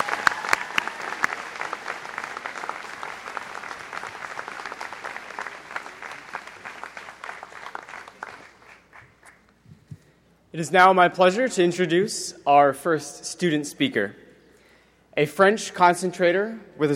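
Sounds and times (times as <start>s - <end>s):
large audience applause: 0.0s - 9.3s
speech: 10.6s - 14.2s, 15.2s - 16.9s.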